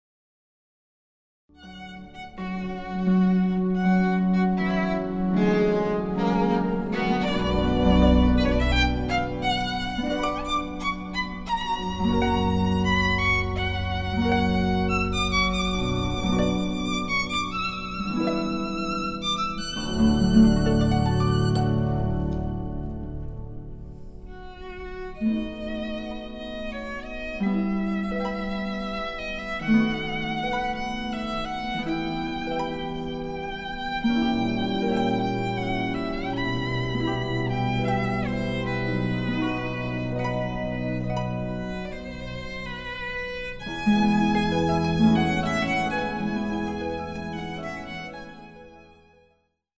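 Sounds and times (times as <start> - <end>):
violin: 1.5 - 49.6
harp: 1.6 - 49.4.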